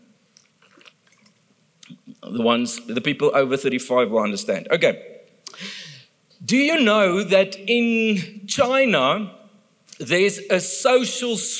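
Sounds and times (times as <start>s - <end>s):
wet slurps and mouth clicks: 0.4s - 2.0s
person sipping water: 0.4s - 2.2s
speech: 2.3s - 5.2s, 6.5s - 9.4s, 10.0s - 11.5s.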